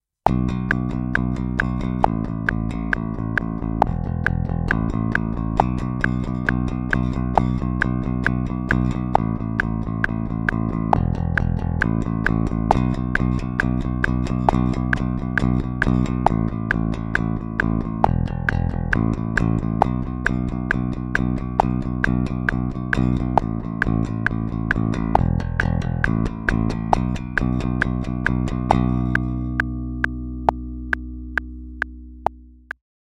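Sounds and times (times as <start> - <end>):
rock bass guitar played with pick in straight eights at 135 BPM: 0.3 - 32.7.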